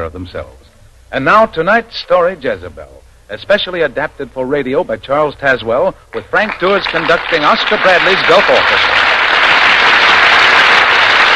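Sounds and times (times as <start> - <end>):
speech: 0.0 - 9.0
large studio audience applause: 6.2 - 11.3.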